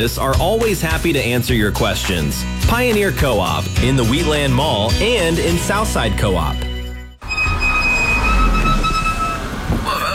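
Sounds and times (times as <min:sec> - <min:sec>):
speech: 0:00.0 - 0:06.7
car brakes squealing with a high-pitched whine: 0:07.2 - 0:10.1.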